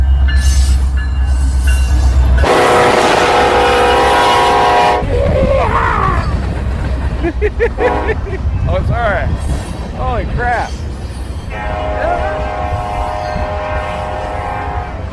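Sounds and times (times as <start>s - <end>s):
train rumbling past: 0.0s - 15.1s
train horn blast: 2.4s - 5.1s, 7.8s - 8.2s, 11.5s - 15.1s
laughter: 6.9s - 8.6s.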